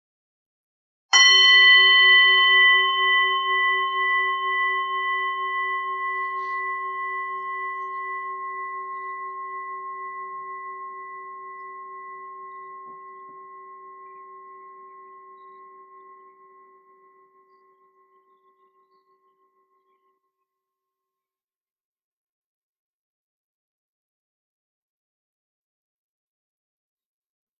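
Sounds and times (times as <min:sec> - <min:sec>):
meditation bell ringing: 0:01.2 - 0:20.2.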